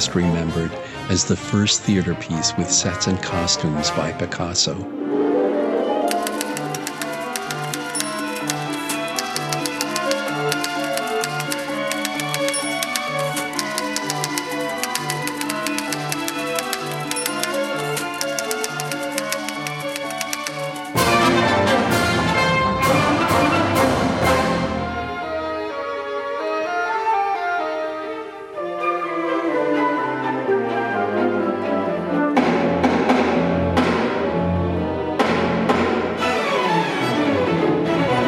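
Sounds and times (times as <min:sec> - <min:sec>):
orchestral music from a recording: 0:00.0 - 0:38.2
speech: 0:00.1 - 0:05.0
typewriter clacking in an orchestra: 0:06.1 - 0:21.0.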